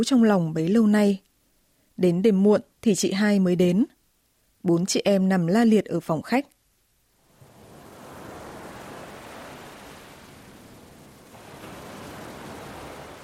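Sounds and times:
speech: 0.0 - 1.3, 2.0 - 4.0, 4.6 - 6.5
ocean waves breaking on shore: 7.2 - 13.2.

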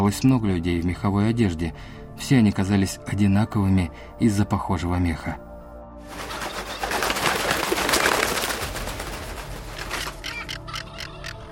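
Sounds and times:
speech: 0.1 - 5.5
birds cackling while flying low: 6.1 - 11.4.

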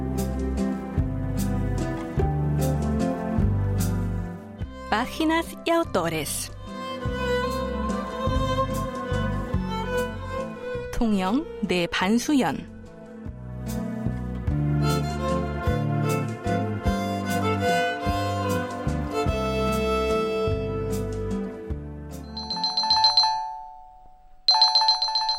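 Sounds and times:
music: 0.0 - 25.3
speech: 5.0 - 6.6, 11.0 - 12.7
electronic telephone ringing with trilling tone: 22.3 - 25.3.

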